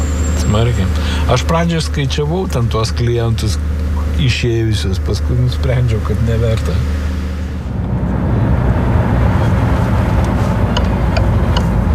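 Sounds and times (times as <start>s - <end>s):
minibus engine droning while turning into an apartment block yard: 0.0s - 11.9s
speech: 0.5s - 7.0s.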